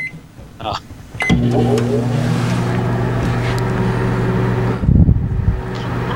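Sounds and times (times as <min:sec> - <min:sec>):
microwave oven running with a steady electric hum: 0:01.0 - 0:06.1
microwave oven starting with a click: 0:01.2 - 0:04.8.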